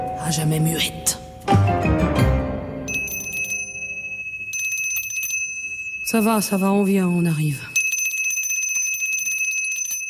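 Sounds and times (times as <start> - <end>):
speech: 0.2 - 2.2, 6.1 - 7.7
small hand bell ringing in a rapid metallic trill: 2.9 - 6.4, 7.7 - 10.0.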